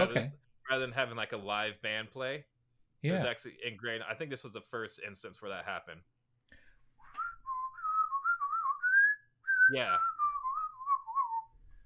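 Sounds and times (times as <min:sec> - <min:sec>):
speech: 0:00.0 - 0:06.1, 0:09.7 - 0:10.1
cartoon character whistling a lively tune: 0:07.1 - 0:11.7.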